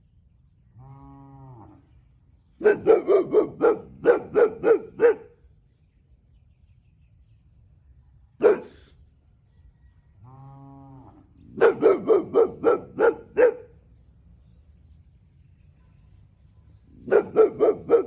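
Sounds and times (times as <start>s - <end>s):
Boxer dog barking: 2.6s - 5.4s, 8.4s - 8.9s, 11.5s - 13.8s, 17.0s - 18.0s.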